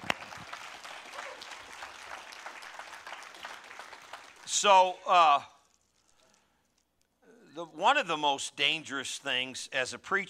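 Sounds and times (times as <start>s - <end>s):
crowd of many hands clapping: 0.0s - 4.6s
speech: 4.6s - 5.5s, 7.6s - 10.2s.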